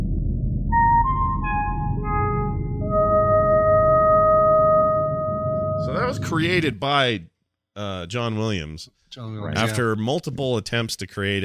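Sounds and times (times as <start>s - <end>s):
steady low rumble: 0.0s - 7.3s
five-tone musical signal melody of sustained electronic-sounding notes: 0.7s - 6.6s
speech: 6.1s - 11.4s.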